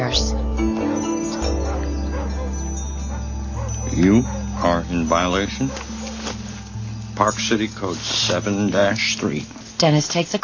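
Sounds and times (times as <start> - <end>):
speech: 0.1 - 0.8, 4.0 - 5.9, 7.2 - 10.4
black and white dog barking on a sidewalk: 1.4 - 6.4
low steady engine-like hum: 1.4 - 9.7.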